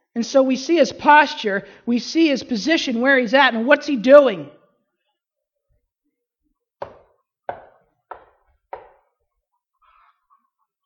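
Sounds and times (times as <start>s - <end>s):
speech: 0.2s - 4.6s
firm knocking on a wooden door: 6.8s - 9.1s.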